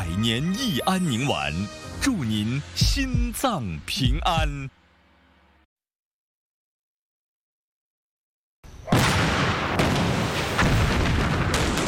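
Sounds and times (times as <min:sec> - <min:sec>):
speech: 0:00.2 - 0:04.8
explosion tearing through a base: 0:08.9 - 0:11.8.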